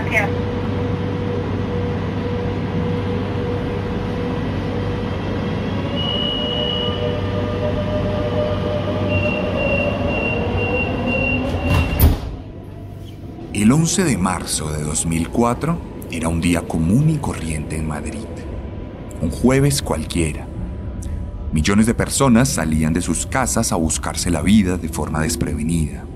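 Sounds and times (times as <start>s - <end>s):
passenger train running on rails: 0.0s - 26.1s
speech: 0.1s - 0.5s, 13.7s - 18.5s, 19.2s - 20.5s, 21.5s - 26.1s.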